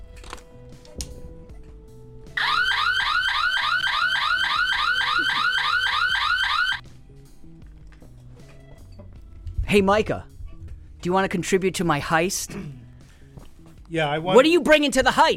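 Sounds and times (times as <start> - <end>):
burglar alarm with warbling electronic whoop: 2.4 - 6.8
speech: 9.7 - 10.3, 11.0 - 12.8, 13.9 - 15.3.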